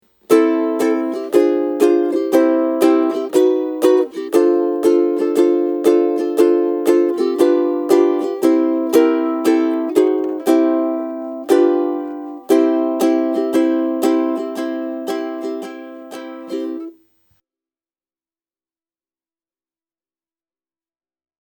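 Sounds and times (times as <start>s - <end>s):
ukulele strumming: 0.2s - 17.0s.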